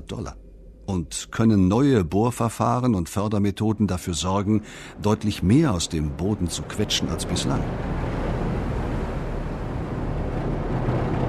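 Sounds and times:
boat engine rumbling at sea: 0.0s - 11.2s
wind at sea: 0.0s - 11.2s
speech: 0.1s - 8.2s
water washing against a boat at sea: 4.0s - 11.2s.

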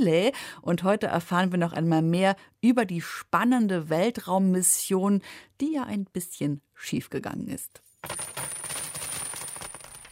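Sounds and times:
speech: 0.0s - 8.4s
D-Mark metal coins clinking and rattling while counted: 8.0s - 10.1s.

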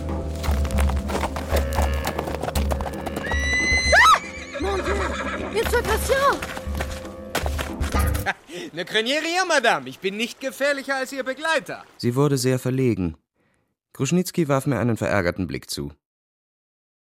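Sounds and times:
horse hooves clip-clopping: 0.0s - 8.3s
horse neighing: 1.4s - 5.6s
speech: 8.6s - 13.2s, 14.0s - 16.0s.

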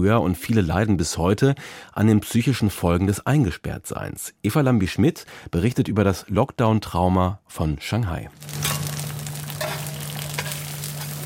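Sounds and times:
speech: 0.0s - 8.7s
Chinese egg pancakes sizzling on a hotplate at a roadside stall in Shanghai: 8.4s - 11.2s.

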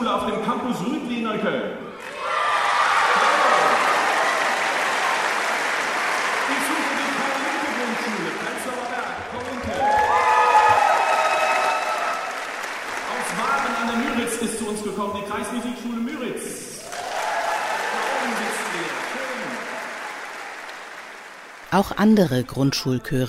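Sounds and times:
speech: 0.1s - 2.4s, 21.7s - 23.2s
steady applause in a concert hall: 2.0s - 15.1s, 16.8s - 22.0s
large crowd of children shouting and cheering in a big hall: 2.1s - 5.2s, 9.7s - 12.2s.

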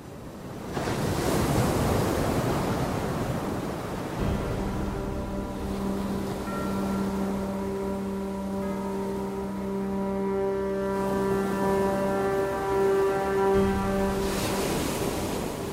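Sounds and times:
loud ocean surf rushing and splashing: 0.0s - 15.7s
steady low droning hum: 4.2s - 15.7s.

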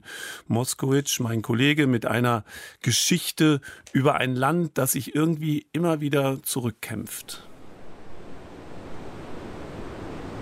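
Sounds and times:
speech: 0.4s - 7.5s
ocean surf washing onto a beach: 7.4s - 10.4s.

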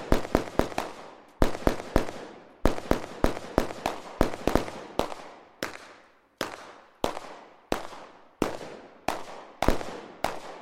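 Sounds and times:
gunshots in a theatre play: 0.0s - 10.6s.

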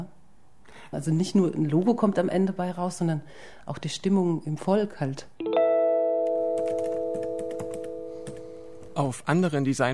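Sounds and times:
speech: 0.9s - 5.6s, 9.0s - 9.9s
typing a website address on a computer keyboard: 6.6s - 9.0s.

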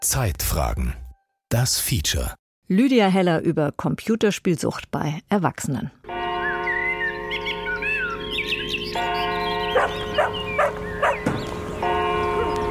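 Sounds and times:
speech: 0.1s - 6.1s
birds chirping at a small farmstead: 6.1s - 12.7s
dog barking at a small farmstead above a village on the Ammersee: 9.7s - 11.2s, 12.3s - 12.7s.

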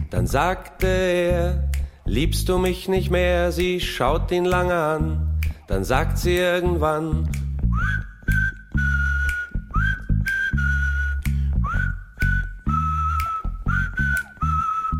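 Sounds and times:
speech: 0.1s - 7.5s
person whistling a well-known melody: 7.4s - 14.9s.

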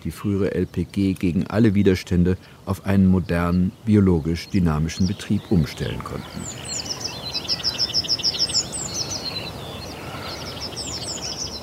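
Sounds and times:
speech: 0.0s - 6.8s
birds singing outdoors: 0.0s - 11.6s
steady rustling background: 0.0s - 11.6s.

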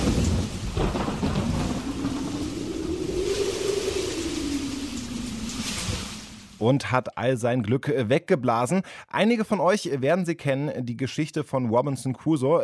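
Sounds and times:
long rolling peal of thunder: 0.0s - 6.6s
steady hissing rain: 0.0s - 6.6s
speech: 6.6s - 12.6s.

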